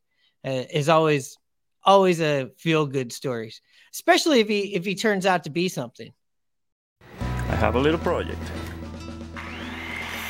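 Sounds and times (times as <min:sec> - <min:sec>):
speech: 0:00.4 - 0:06.2, 0:07.6 - 0:08.7
power tool motor running while making a light bat: 0:09.4 - 0:10.2.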